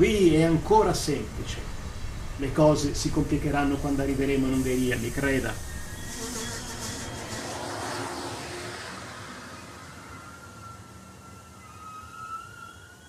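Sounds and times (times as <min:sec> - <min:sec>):
speech: 0:00.0 - 0:01.7, 0:02.4 - 0:06.4
train arriving at a railway station: 0:00.0 - 0:13.0
thin high brake squeal of a train: 0:01.2 - 0:13.0.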